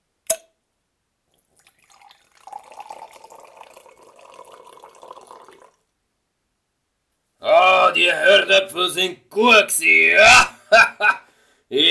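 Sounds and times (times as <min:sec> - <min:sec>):
sharp click: 0:00.3 - 0:00.5
drink poured from a bottle into a cup: 0:01.4 - 0:05.8
speech: 0:07.4 - 0:11.8.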